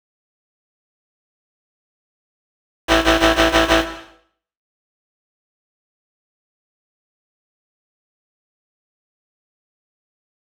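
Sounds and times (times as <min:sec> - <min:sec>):
bass in A minor: 0:02.9 - 0:04.1.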